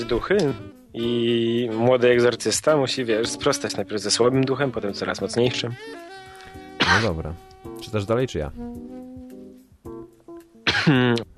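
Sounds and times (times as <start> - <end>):
speech: 0.0 - 6.1, 6.9 - 9.0, 10.8 - 11.3
single loud rough cough: 6.8 - 7.2, 10.6 - 11.2.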